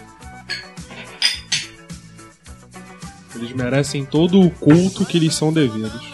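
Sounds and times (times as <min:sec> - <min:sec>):
glasses clinking in a toast: 0:00.4 - 0:01.9
speech: 0:03.4 - 0:06.1.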